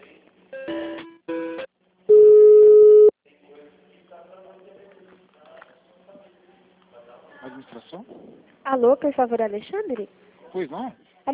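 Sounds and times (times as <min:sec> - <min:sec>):
telephone tones as an office call is transferred: 0:02.1 - 0:03.1
speech: 0:08.8 - 0:11.3.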